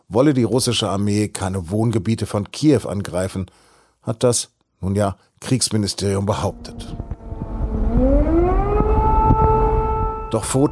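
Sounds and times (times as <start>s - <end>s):
speech: 0.1s - 7.1s, 10.3s - 10.7s
civil defense air raid siren wailing over a city: 6.2s - 10.7s.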